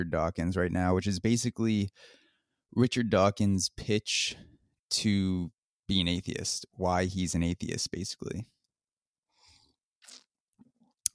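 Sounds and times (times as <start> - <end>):
speech: 0.0 - 8.6
slurping sips of coffee: 10.0 - 10.3.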